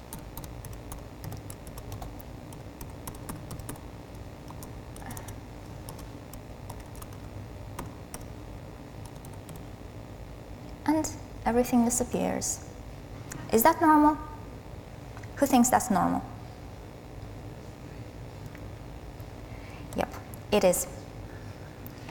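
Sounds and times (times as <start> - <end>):
typing on a computer keyboard during a coding demonstration: 0.1 - 3.8, 4.5 - 6.1, 6.7 - 8.2
speech: 11.0 - 12.7, 13.5 - 14.3, 15.4 - 16.3, 20.5 - 21.0.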